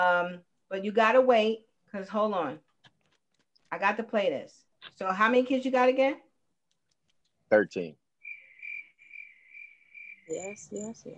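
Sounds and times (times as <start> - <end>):
speech: 0.0 - 2.7, 3.7 - 6.3, 7.5 - 8.0, 10.3 - 11.1
crickets chirping in a high-pitched trill: 8.2 - 11.1.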